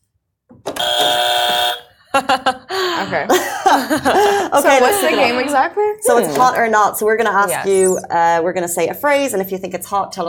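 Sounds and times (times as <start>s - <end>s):
loud harsh game show buzzer: 0.8s - 2.0s
laughter: 2.1s - 6.5s
speech: 3.0s - 10.2s.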